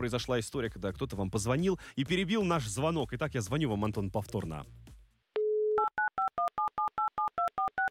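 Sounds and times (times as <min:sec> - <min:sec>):
speech: 0:00.0 - 0:04.8
touch-tone dialing beeps: 0:05.4 - 0:07.9.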